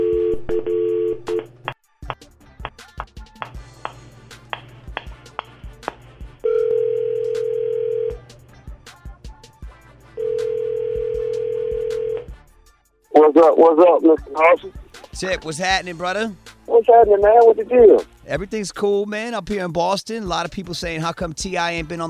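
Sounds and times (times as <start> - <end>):
telephone dial tone humming: 0.0 - 1.4, 6.5 - 8.2, 10.2 - 12.3
long telephone ringing tones on the line: 6.5 - 8.2, 10.2 - 12.2
person answering phone: 6.5 - 8.2, 10.2 - 12.2, 16.7 - 18.0
speech: 13.4 - 22.0.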